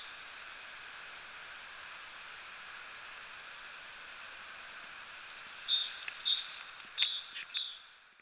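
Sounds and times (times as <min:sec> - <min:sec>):
hiss: 0:00.0 - 0:08.0
great tit Parus major whistled notes: 0:05.3 - 0:08.2.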